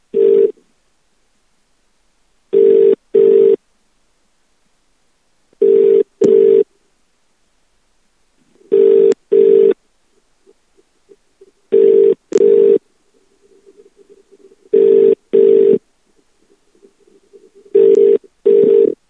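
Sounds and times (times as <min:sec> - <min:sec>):
phone ringing: 0:00.2 - 0:00.5, 0:02.6 - 0:03.6, 0:05.6 - 0:06.6, 0:08.7 - 0:09.8, 0:11.7 - 0:12.8, 0:14.7 - 0:15.8, 0:17.7 - 0:19.0.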